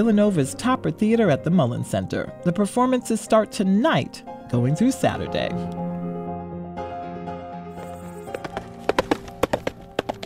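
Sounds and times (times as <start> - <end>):
speech: 0.0 - 5.8
horse hooves clip-clopping: 7.8 - 10.2.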